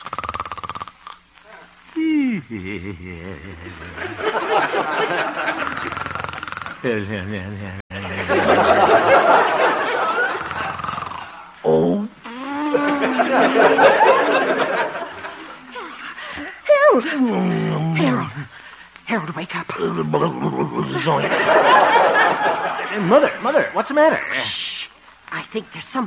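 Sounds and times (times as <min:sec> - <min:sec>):
man snoring gently in his sleep: 0:00.0 - 0:01.2, 0:02.0 - 0:04.2, 0:05.5 - 0:08.2, 0:10.3 - 0:13.3
laughter: 0:01.5 - 0:06.2, 0:06.9 - 0:11.6, 0:12.7 - 0:16.4, 0:20.0 - 0:23.8
speech: 0:02.0 - 0:06.1, 0:06.8 - 0:09.7, 0:17.0 - 0:18.5, 0:19.1 - 0:24.7, 0:25.5 - 0:26.0.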